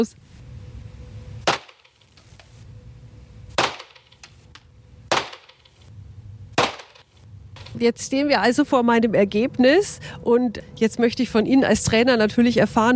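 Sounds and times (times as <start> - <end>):
speech: 0.0 - 0.3, 7.8 - 12.9
low steady rumble: 0.0 - 12.9
gunshots at a shooting range: 1.4 - 2.0, 3.6 - 4.1, 5.1 - 5.7, 6.6 - 7.0.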